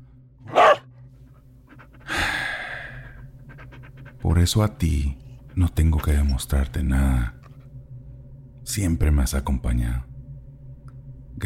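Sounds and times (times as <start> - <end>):
dog panting: 0.5 - 6.3
speech: 4.2 - 7.4, 8.7 - 10.1.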